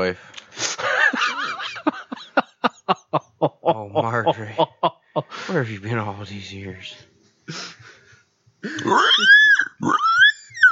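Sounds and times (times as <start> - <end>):
speech: 0.0 - 0.7, 5.5 - 7.1, 8.8 - 9.3
laughter: 0.8 - 5.3
pig oinking and grunting: 8.7 - 10.2.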